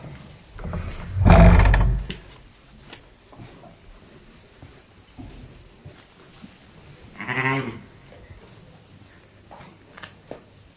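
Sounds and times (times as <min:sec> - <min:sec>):
faint rustling and shuffling of animals: 0:00.0 - 0:10.7
sheep and lambs bleating in a stable: 0:07.2 - 0:07.8.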